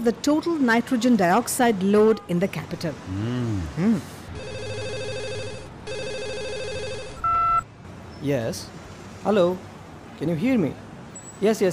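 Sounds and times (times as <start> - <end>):
speech: 0.0 - 4.4, 8.2 - 10.8, 11.4 - 11.7
office telephone ringing: 4.4 - 7.6.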